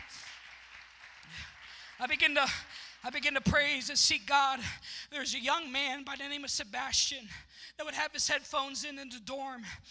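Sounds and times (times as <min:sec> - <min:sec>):
congregation clapping together in applause: 0:00.0 - 0:03.4
speech: 0:01.3 - 0:09.8.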